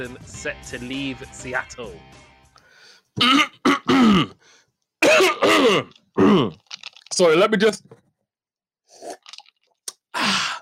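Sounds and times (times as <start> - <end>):
speech: 0.0 - 2.2, 3.2 - 6.6, 7.2 - 8.0
man clearing his throat: 3.2 - 4.4, 5.0 - 6.6.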